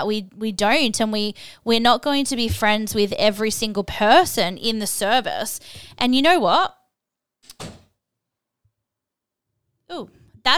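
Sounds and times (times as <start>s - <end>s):
speech: 0.0s - 6.8s, 9.9s - 10.5s
door slamming shut: 7.5s - 7.8s.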